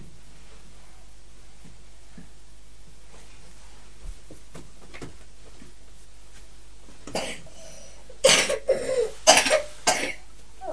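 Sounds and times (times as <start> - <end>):
young boy coughing harshly: 7.1 - 7.6, 8.2 - 10.3.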